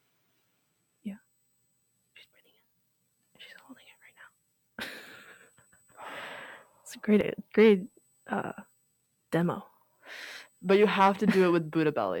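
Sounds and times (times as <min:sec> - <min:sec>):
speech: 0:01.0 - 0:01.2, 0:07.1 - 0:08.6, 0:09.3 - 0:09.7, 0:10.6 - 0:12.1
soft whispered sounds: 0:02.1 - 0:02.7, 0:03.4 - 0:04.4
person doing a controlled breathing exercise, inhaling and exhaling: 0:06.0 - 0:06.8.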